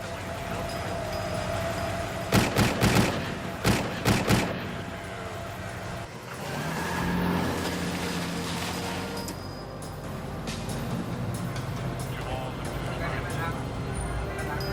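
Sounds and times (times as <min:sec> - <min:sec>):
street and traffic noise: 0:00.0 - 0:14.7
gunshots during a street shooting: 0:02.3 - 0:05.1.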